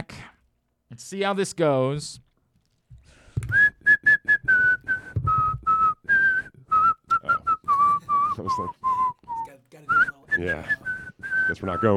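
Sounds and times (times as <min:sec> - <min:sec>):
speech: 0:01.0 - 0:02.3, 0:10.4 - 0:10.8, 0:11.5 - 0:11.9
person whistling a tune: 0:03.4 - 0:11.9.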